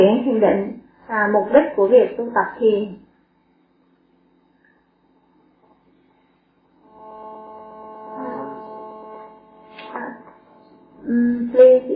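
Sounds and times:
speech: 0:00.0 - 0:03.0, 0:11.0 - 0:11.9
electronic buzzing interference hum from a mobile phone in use: 0:00.0 - 0:11.9.

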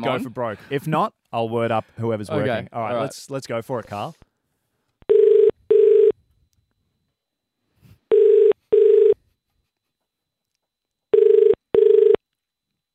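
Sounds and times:
speech: 0:00.0 - 0:04.2
phone line ringing in a double-burst pattern: 0:05.1 - 0:06.2, 0:08.1 - 0:09.2, 0:11.1 - 0:12.2.

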